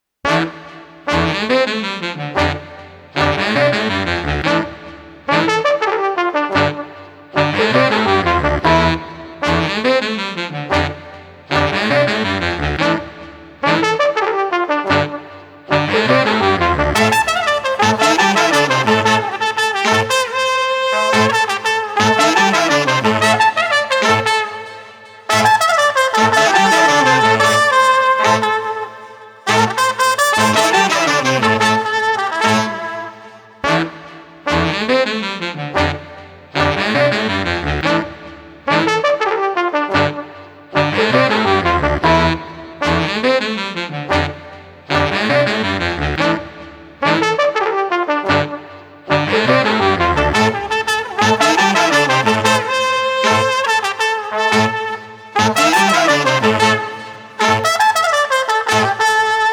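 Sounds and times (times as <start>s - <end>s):
street brass funk music without drums: 0.3s - 59.5s.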